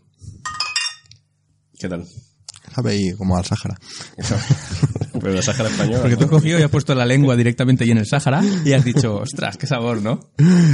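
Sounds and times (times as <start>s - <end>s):
glasses clinking in a toast during a beer tasting: 0.4s - 1.1s
speech: 1.8s - 10.7s
laughter: 4.1s - 6.9s, 8.4s - 9.7s.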